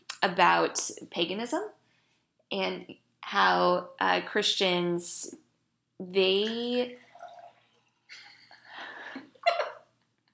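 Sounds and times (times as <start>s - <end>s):
speech: 0.2s - 1.8s, 2.5s - 5.4s, 6.0s - 7.0s
person swallowing and gulping water: 7.0s - 9.4s.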